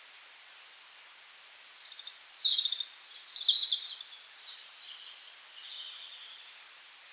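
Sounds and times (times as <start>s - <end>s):
European robin singing: 2.0s - 6.4s.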